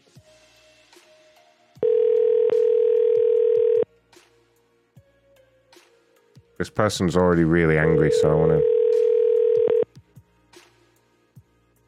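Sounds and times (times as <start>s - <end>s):
telephone ringing on an outgoing call: 1.8s - 3.9s, 7.8s - 9.8s
speech: 6.6s - 8.8s.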